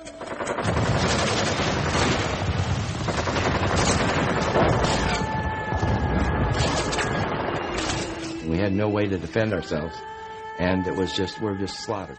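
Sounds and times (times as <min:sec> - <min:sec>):
heavy continuous gunfire: 0:00.2 - 0:08.2
cannon fire: 0:00.5 - 0:07.9
speech: 0:08.7 - 0:12.1.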